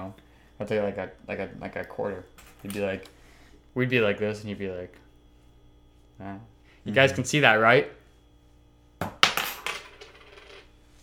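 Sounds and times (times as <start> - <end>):
speech: 0.1 - 5.0, 6.2 - 8.0
coins dropping onto a hard surface: 2.4 - 2.8, 9.0 - 10.7.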